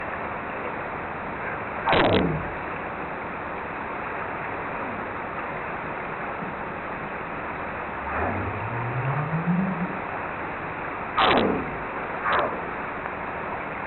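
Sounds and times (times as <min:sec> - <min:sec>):
North Pacific right whale: 0:00.1 - 0:13.4.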